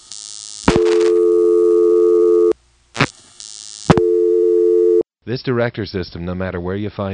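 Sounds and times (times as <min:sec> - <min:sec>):
harsh electrical telephone line buzz: 0:00.7 - 0:02.6, 0:03.9 - 0:05.0
steady telephone dial tone: 0:00.7 - 0:02.6, 0:03.9 - 0:05.1
speech: 0:05.3 - 0:07.1.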